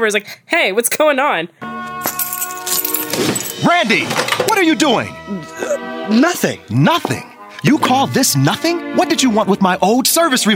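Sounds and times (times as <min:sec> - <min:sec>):
speech: 0:00.0 - 0:01.8, 0:03.2 - 0:10.5
keys jingling: 0:00.2 - 0:01.1, 0:02.0 - 0:03.6.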